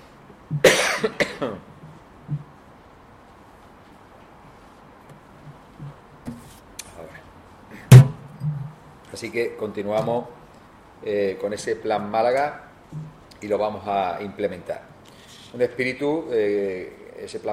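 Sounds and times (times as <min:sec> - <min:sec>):
speech: 0:00.6 - 0:01.6, 0:09.3 - 0:10.4, 0:11.0 - 0:14.9, 0:15.5 - 0:17.5
coughing: 0:00.6 - 0:01.7
throat clearing: 0:00.6 - 0:01.7
faint shuffles: 0:01.8 - 0:07.8.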